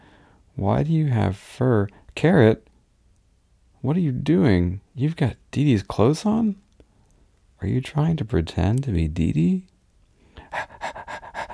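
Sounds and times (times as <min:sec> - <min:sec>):
speech: 0:00.6 - 0:02.7, 0:03.8 - 0:06.6, 0:07.6 - 0:09.7, 0:10.5 - 0:10.8
dog panting: 0:10.4 - 0:11.5.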